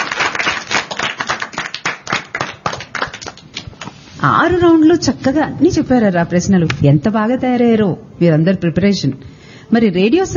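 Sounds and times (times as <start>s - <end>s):
audience at a quiz event clapping: 0.0s - 4.0s
speech: 4.2s - 10.3s.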